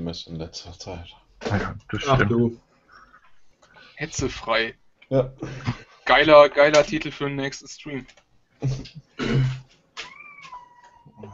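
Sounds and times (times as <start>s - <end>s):
speech: 0.1s - 2.7s, 4.0s - 9.4s
cat meowing in a drawn-out falling cry: 10.0s - 11.3s.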